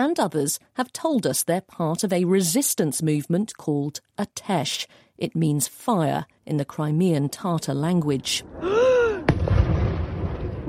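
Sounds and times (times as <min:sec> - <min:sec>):
speech: 0:00.0 - 0:08.8
woman crying out: 0:08.6 - 0:09.3
explosion from an attack on two Russian warships at Sevastopol, Crimea: 0:09.2 - 0:10.6.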